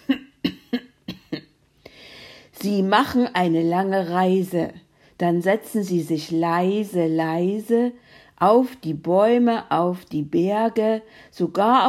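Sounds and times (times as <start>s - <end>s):
voice imitating a goblin-like character clearing his throat: 0.0s - 1.5s
speech: 2.6s - 11.8s.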